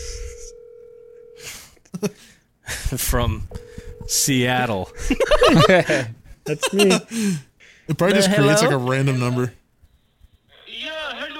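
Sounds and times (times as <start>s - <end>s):
steady electronic phone tone: 0.0s - 1.4s, 3.4s - 5.6s
speech: 2.0s - 2.3s, 2.9s - 9.6s
laughter: 5.0s - 7.1s.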